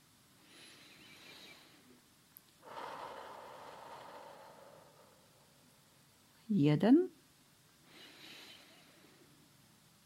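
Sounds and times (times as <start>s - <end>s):
slow deep breath taken to hold back crying under stress: 0.4s - 6.1s, 7.8s - 9.5s
speech: 6.5s - 7.1s.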